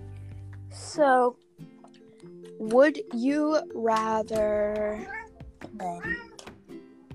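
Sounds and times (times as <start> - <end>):
speech: 0.9 - 1.7, 2.6 - 5.2, 5.8 - 6.2
cat meowing at a door: 5.0 - 6.5.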